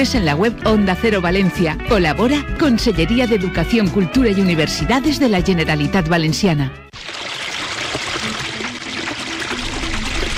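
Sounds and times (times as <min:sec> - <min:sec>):
speech: 0:00.0 - 0:07.1
water running from an open tap: 0:06.9 - 0:10.3.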